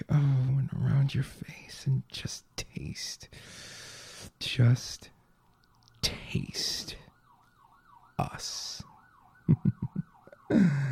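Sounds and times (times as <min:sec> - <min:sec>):
speech: 0:01.1 - 0:05.2, 0:06.0 - 0:07.0, 0:08.2 - 0:08.9, 0:10.5 - 0:10.8
wavering emergency siren wailing: 0:06.6 - 0:10.8.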